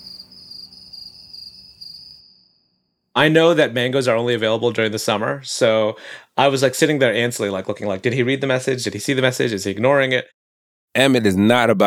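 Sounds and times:
crickets chirping: 0.0 - 3.0
speech: 3.2 - 11.8.

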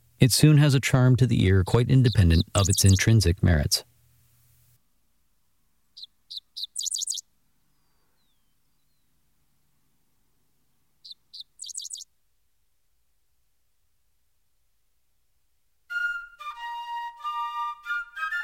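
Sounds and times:
speech: 0.2 - 3.9
bird on a roadside perch singing high scratchy grating song: 1.4 - 3.8, 6.0 - 9.1, 11.0 - 12.0.

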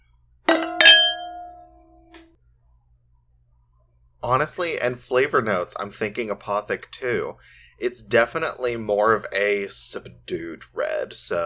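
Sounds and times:
wine glasses clinking in a toast during a red wine tasting: 0.5 - 2.1
clear ringing tone of wine glasses: 0.5 - 2.2
speech: 4.2 - 11.4.

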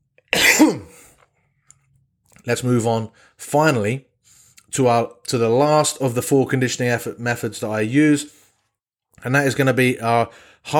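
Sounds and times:
cough: 0.3 - 1.1
speech: 0.6 - 1.0, 2.4 - 4.1, 4.7 - 8.4, 9.2 - 10.7.

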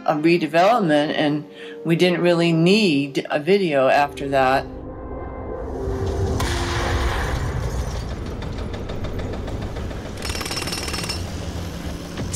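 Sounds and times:
speech: 0.1 - 4.8
steady rumble of forklifts and machinery at construction site: 4.8 - 12.3
jackhammers breaking concrete at construction site: 8.6 - 11.6.

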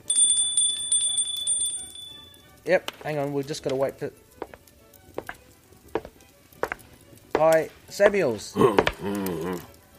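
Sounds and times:
bell ringing: 0.0 - 2.4
speech: 2.6 - 4.2, 7.4 - 9.7.

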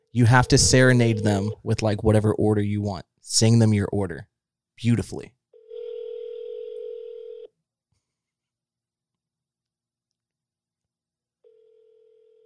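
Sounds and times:
speech: 0.2 - 5.4
phone line ringing tone: 0.4 - 1.6, 5.6 - 7.5, 11.4 - 12.4.

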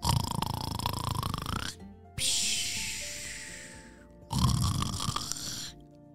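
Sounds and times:
voice imitating a fish snoring with bubbles: 0.0 - 5.8.

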